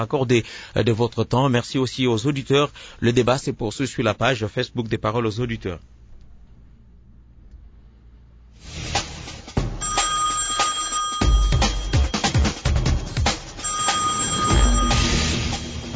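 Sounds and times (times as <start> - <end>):
speech: 0.0 - 6.0
telephone ringing unanswered on a call line: 9.8 - 15.9.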